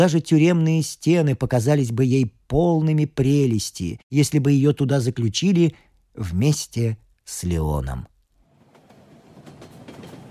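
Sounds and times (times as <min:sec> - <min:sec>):
speech: 0:00.0 - 0:08.1
train rolling along rails: 0:08.4 - 0:10.2.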